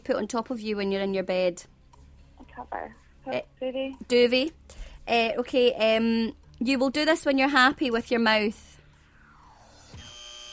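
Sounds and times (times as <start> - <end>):
speech: 0.1 - 1.8, 2.6 - 8.7
quiz show buzzer: 9.9 - 10.5.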